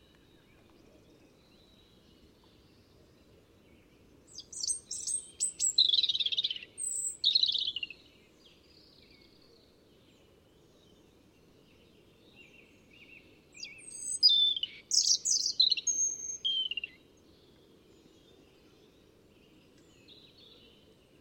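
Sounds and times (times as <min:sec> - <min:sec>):
European robin Erithacus rubecula singing: 0:04.3 - 0:08.1, 0:12.4 - 0:17.0.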